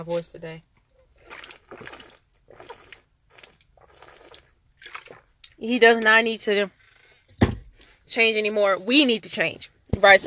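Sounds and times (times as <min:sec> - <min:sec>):
speech: 0:00.0 - 0:01.4, 0:05.6 - 0:06.8, 0:08.1 - 0:10.2
water sloshing: 0:00.7 - 0:06.1
person gulping water while drinking: 0:01.0 - 0:05.6.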